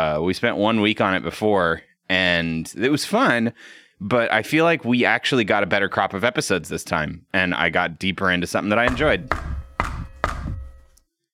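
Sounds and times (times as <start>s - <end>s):
speech: 0.0s - 9.5s
firm hollow knocks on a door: 8.9s - 10.9s.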